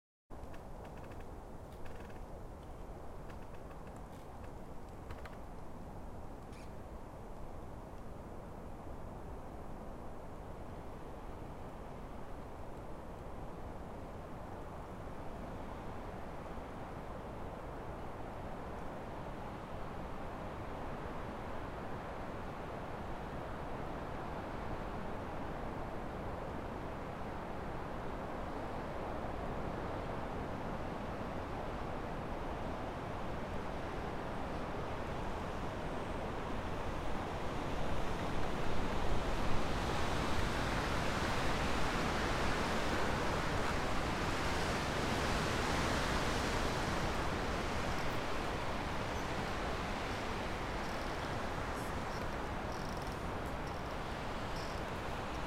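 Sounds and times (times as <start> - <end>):
branches creaking in the wind: 0.3 - 7.5, 35.1 - 55.4
winter forest ambience: 0.3 - 55.4.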